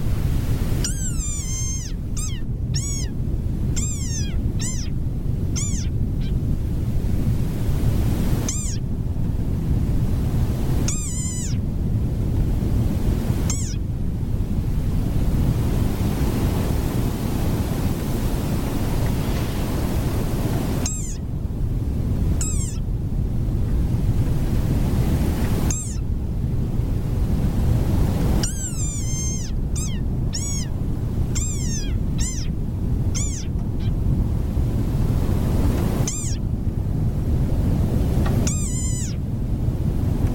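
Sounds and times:
steady rushing surf-like noise: 0:00.0 - 0:40.3
desert rain frog giving high squeaky chirping calls: 0:00.8 - 0:03.2, 0:03.8 - 0:06.4, 0:08.4 - 0:08.8, 0:10.8 - 0:11.6, 0:13.5 - 0:13.9, 0:20.8 - 0:21.2, 0:22.4 - 0:22.8, 0:25.7 - 0:26.0, 0:28.4 - 0:34.0, 0:36.0 - 0:36.4, 0:38.4 - 0:39.2.

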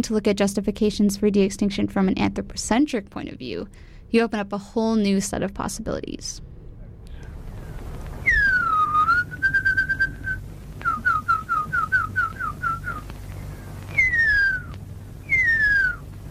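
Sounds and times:
speech: 0:00.0 - 0:06.5
low hum: 0:00.0 - 0:16.2
person whistling the call of the huia, an extinct New Zealand bird: 0:08.2 - 0:13.0, 0:13.9 - 0:16.0.

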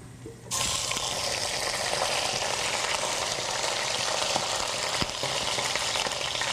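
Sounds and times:
duck skin frying in a hot pan: 0:00.5 - 0:06.5.

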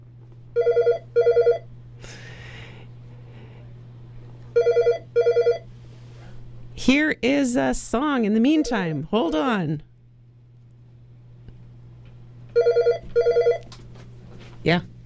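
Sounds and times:
low steady hum: 0:00.0 - 0:15.0
telephone ringing with a double-trill at a radio station: 0:00.6 - 0:01.7, 0:04.6 - 0:05.7, 0:12.5 - 0:13.7
speech: 0:06.9 - 0:09.9, 0:14.6 - 0:14.9.

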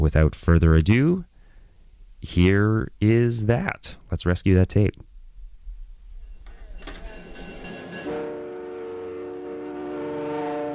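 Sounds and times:
speech: 0:00.0 - 0:01.3, 0:02.2 - 0:05.1
passenger train rumbling along the tracks with clattering wheels: 0:06.8 - 0:10.7
passenger train horn blast: 0:07.6 - 0:10.7.

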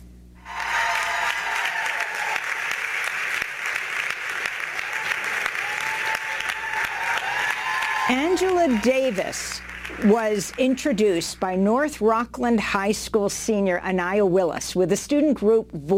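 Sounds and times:
large audience applauding in a standing ovation: 0:00.4 - 0:11.4
speech: 0:08.1 - 0:15.9.

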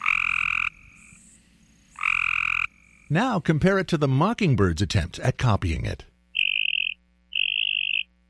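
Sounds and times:
Cope's gray tree frog buzzing trill: 0:00.0 - 0:03.2, 0:06.3 - 0:08.2
speech: 0:03.1 - 0:06.1.

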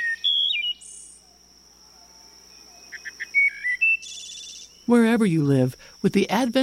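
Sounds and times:
wood thrush singing flute-like phrases and trills in quiet woods: 0:00.0 - 0:01.2, 0:02.6 - 0:06.6
speech: 0:04.9 - 0:06.6.

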